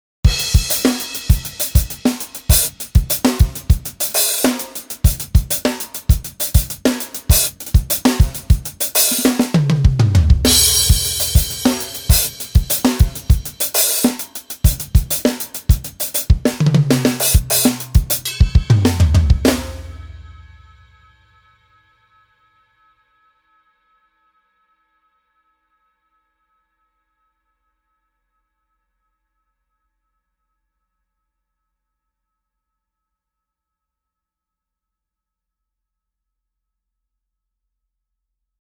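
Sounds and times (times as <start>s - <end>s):
drum sample: 0.3s - 20.5s.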